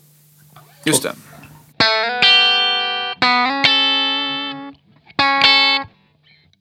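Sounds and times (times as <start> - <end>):
electric guitar played through a distortion pedal: 0.0 - 6.3
speech: 0.8 - 1.3.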